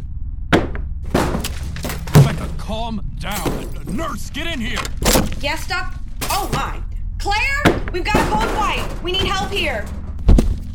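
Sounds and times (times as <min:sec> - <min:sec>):
low rumble: 0:00.0 - 0:10.7
glass smashing with scattering shards: 0:01.2 - 0:02.6
speech: 0:02.4 - 0:10.0.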